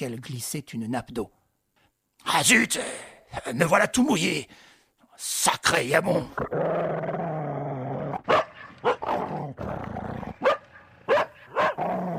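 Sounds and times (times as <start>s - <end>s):
speech: 0.0s - 1.4s, 2.2s - 7.2s
dog barking furiously in a garden: 8.2s - 9.3s, 10.3s - 12.0s.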